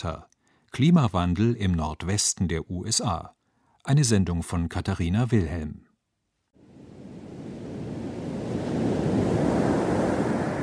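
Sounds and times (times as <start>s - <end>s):
speech: 0.0s - 5.9s
heavy ocean surf rolling onto beach: 6.6s - 10.6s.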